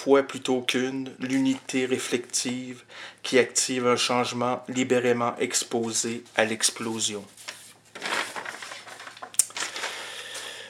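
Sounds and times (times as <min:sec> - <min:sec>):
speech: 0:00.0 - 0:07.5
sheets crumpling: 0:07.4 - 0:10.0.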